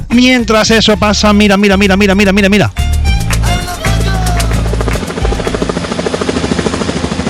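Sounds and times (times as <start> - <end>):
speech: 0.1 - 2.9
helicopter rotor thumping: 3.0 - 7.2.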